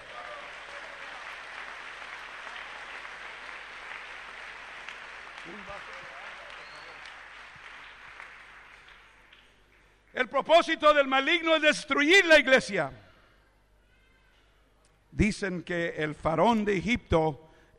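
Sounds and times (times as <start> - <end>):
congregation applauding in a church: 0.0 - 10.9
speech: 5.5 - 6.2, 10.2 - 13.0, 15.2 - 17.7.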